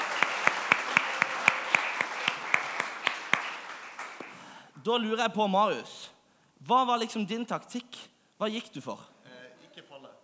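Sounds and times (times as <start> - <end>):
audience applause: 0.0 - 4.6
speech: 4.8 - 9.1.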